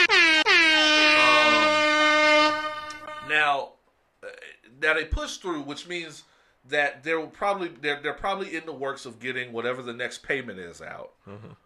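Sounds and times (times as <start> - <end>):
loud brassy air horn blasts: 0.0 - 3.5
speech: 4.8 - 11.6.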